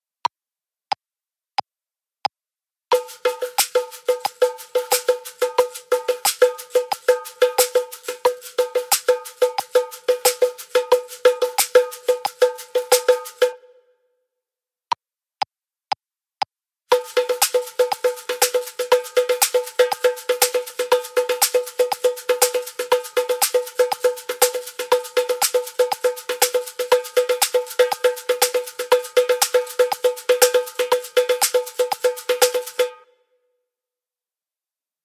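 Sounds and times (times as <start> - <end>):
caxixi shakers: 2.9 - 13.6, 16.9 - 33.0.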